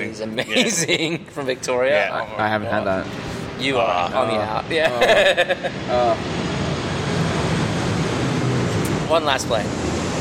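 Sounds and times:
speech: 0.2s - 6.4s, 9.1s - 9.9s
laughter: 0.3s - 1.3s, 4.8s - 6.2s
airplane passing overhead: 3.0s - 10.1s.

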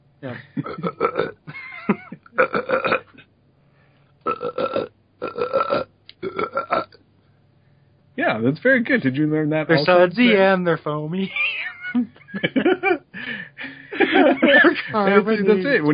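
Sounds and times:
speech: 0.2s - 2.0s, 8.4s - 11.6s, 14.2s - 15.9s
loud drawn-out burps: 0.4s - 1.5s, 2.3s - 3.2s, 4.2s - 7.0s
laughter: 11.2s - 15.9s.

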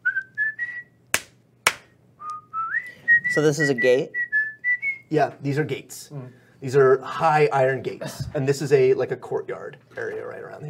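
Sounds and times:
people whistling: 0.0s - 1.0s, 2.2s - 5.1s
sharp loud snaps: 1.1s - 2.0s
speech: 3.4s - 4.2s, 5.1s - 10.6s.

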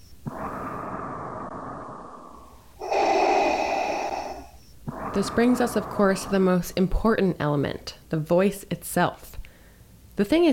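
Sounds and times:
mechanical respirator breathing: 2.1s - 6.5s
speech: 5.2s - 9.4s, 10.2s - 10.5s.

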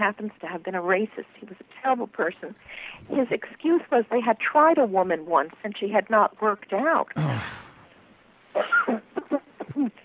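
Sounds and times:
speech: 0.0s - 7.6s, 8.5s - 9.1s, 9.8s - 10.0s
person coughing in hacking bursts: 7.2s - 8.0s
throat clearing: 7.2s - 8.0s.

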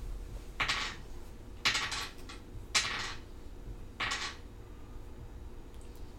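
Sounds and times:
low room hum: 0.0s - 6.1s
several dice rattling and clattering onto a hard table: 0.6s - 1.0s, 1.6s - 3.2s, 4.0s - 4.4s.

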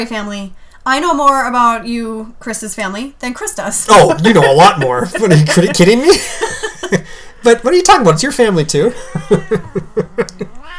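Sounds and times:
speech: 0.0s - 10.6s
laughter: 3.8s - 7.4s, 8.7s - 10.6s
angry cat yowling: 9.1s - 10.7s.

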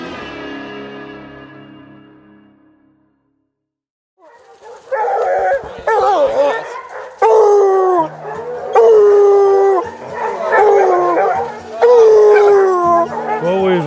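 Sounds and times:
pack of free-ranging bear-hunting dogs howling and baying: 4.2s - 13.8s.

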